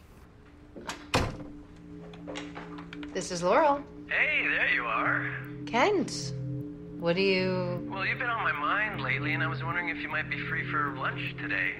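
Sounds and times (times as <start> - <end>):
faint steady hum: 0.0 - 11.7
door pushed shut with a heavy thump: 0.9 - 1.6
speech: 3.2 - 6.4, 7.0 - 11.7.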